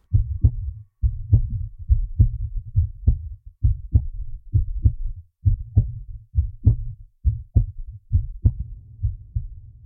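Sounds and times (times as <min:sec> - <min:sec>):
enhanced heartbeat thumping: 0:00.0 - 0:09.7.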